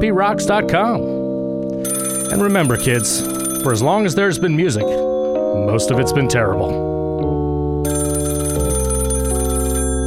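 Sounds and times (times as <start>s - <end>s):
speech: 0.0s - 1.2s, 1.8s - 7.0s
telephone bell ringing loudly: 1.8s - 5.2s, 7.8s - 10.0s.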